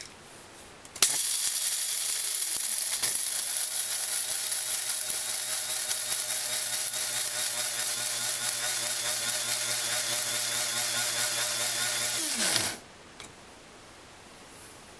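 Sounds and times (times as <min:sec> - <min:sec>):
coffee grinder: 0:01.0 - 0:12.9.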